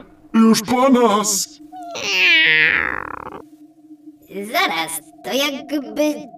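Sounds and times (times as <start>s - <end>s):
speech: 0.0s - 3.5s, 4.4s - 6.3s
faint steady hum: 0.0s - 6.3s
cat meowing: 1.8s - 3.4s.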